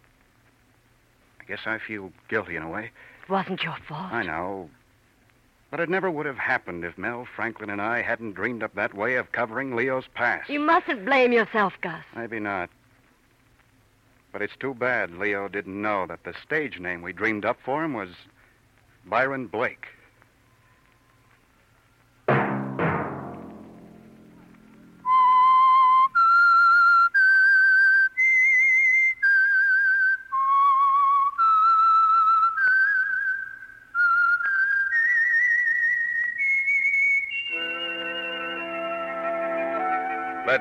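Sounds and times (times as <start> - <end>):
speech: 1.5 - 4.8, 5.7 - 12.8, 14.3 - 18.3, 19.0 - 20.0
sharp percussive hits: 22.3 - 25.0
whistled theme melody of sustained gliding notes: 24.8 - 40.5
richer held orchestral chord: 37.6 - 40.5.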